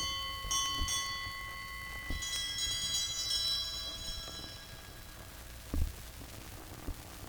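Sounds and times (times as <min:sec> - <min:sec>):
several small bells ringing: 0:00.0 - 0:05.7.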